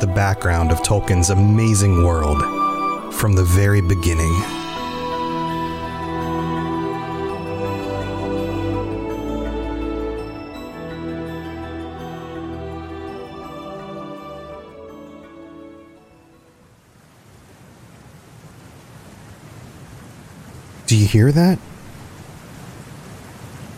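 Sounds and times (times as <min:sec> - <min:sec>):
tonal music: 0:00.0 - 0:16.6
rushing water: 0:00.0 - 0:23.7
speech: 0:00.1 - 0:04.7, 0:20.9 - 0:21.7.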